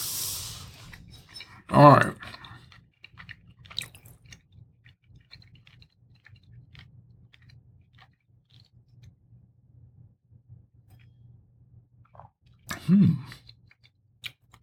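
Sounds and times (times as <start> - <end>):
person chewing grilled marinated steak: 0.0 - 9.1, 12.1 - 14.6
speech: 1.7 - 2.2.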